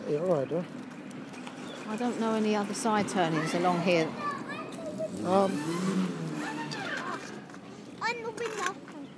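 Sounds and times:
road noise hum: 0:00.0 - 0:09.1
speech: 0:00.1 - 0:00.9, 0:01.9 - 0:04.3, 0:05.2 - 0:06.2
car engine pulling away from a property: 0:04.8 - 0:07.5.

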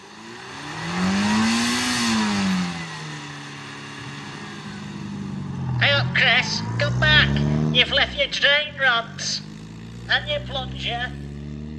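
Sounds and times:
Hillman Imp van 35 brake horsepower engine revving and driving off: 0:00.0 - 0:11.7
speech: 0:06.0 - 0:09.5, 0:10.1 - 0:11.2.

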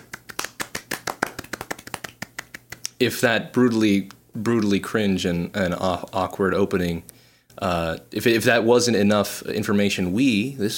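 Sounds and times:
hand clapping: 0:00.0 - 0:03.0
speech: 0:03.0 - 0:10.7.

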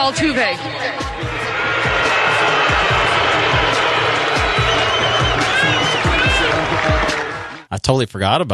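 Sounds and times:
speech: 0:00.0 - 0:01.3, 0:07.7 - 0:08.5
large stadium crowd booing a batter: 0:01.0 - 0:07.7
scattered whistles in the crowd: 0:04.3 - 0:06.6.

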